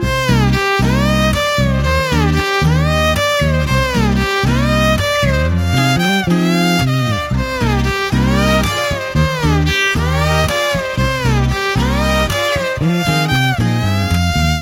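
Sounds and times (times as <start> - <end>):
violin ringtone: 0.0 - 14.6.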